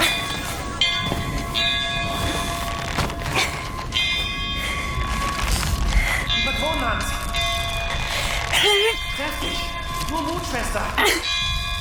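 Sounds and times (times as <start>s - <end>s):
heavy weather bell rung by pulling its rope: 0.1s - 5.6s, 6.2s - 8.1s, 8.8s - 11.7s.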